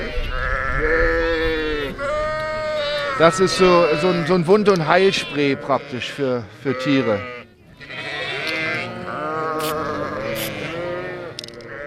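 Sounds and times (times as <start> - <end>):
flock of sheep bleating loudly: 0.0 - 11.8
speech: 3.2 - 7.4.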